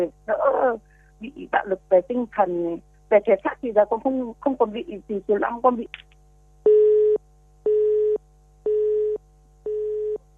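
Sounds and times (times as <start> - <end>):
speech: 0.0 - 6.1
phone busy tone beeps after a dropped call: 6.7 - 10.2.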